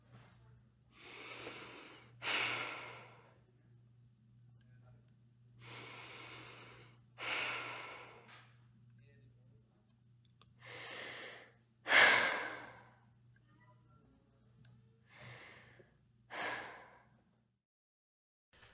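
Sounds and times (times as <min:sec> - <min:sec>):
girl breathing: 0:00.9 - 0:03.4, 0:05.6 - 0:08.3, 0:10.6 - 0:13.0, 0:15.1 - 0:17.1.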